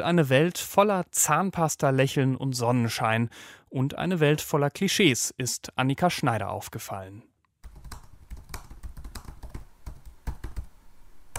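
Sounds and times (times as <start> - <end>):
speech: 0.0 - 7.3
typing a search term on a computer keyboard: 7.6 - 10.7.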